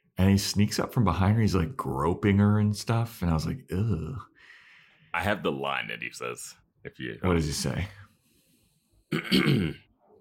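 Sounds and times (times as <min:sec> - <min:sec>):
speech: 0:00.2 - 0:04.3, 0:05.2 - 0:08.0, 0:09.1 - 0:09.8
person clearing their throat: 0:09.1 - 0:09.9.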